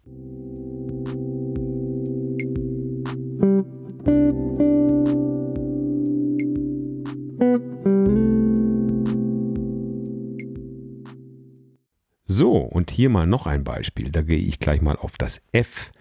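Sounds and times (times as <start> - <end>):
sustained keyboard chord on C with melody note resolving to the sixth: 0.0 - 11.8
speech: 13.0 - 15.9.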